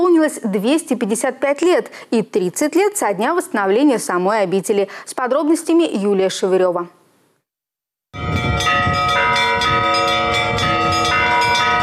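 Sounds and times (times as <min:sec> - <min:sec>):
speech: 0:00.2 - 0:07.0
monastery church bells pealing for a patronal feast day: 0:08.2 - 0:11.8.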